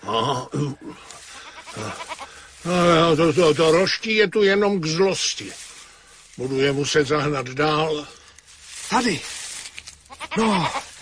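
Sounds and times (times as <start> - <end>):
speech: 0.0 - 1.1, 3.1 - 5.6, 6.4 - 8.2, 8.9 - 9.4, 10.4 - 10.8
sheep bleating: 1.1 - 3.0, 10.0 - 11.0.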